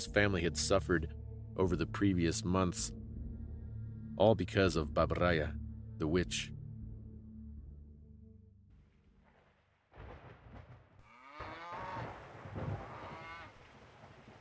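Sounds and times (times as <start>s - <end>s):
speech: 0.0s - 3.0s, 4.2s - 6.6s
cow mooing and bellowing: 11.0s - 13.5s.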